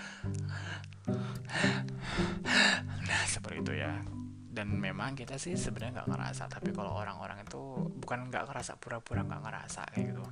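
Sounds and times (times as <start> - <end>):
person imitating breathless panting: 0.0 - 3.4
speech: 3.7 - 10.3.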